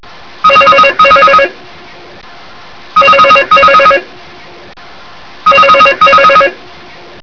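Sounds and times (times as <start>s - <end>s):
intercom doorbell ringing: 0.5s - 1.5s, 3.0s - 4.0s, 5.5s - 6.6s.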